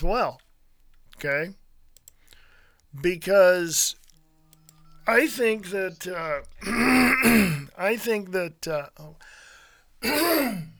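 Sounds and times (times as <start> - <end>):
speech: 0.0 - 0.4, 1.2 - 1.6, 2.9 - 4.0, 5.1 - 9.4, 10.0 - 10.7
person clearing phlegm from throat: 6.6 - 7.8, 10.0 - 10.7.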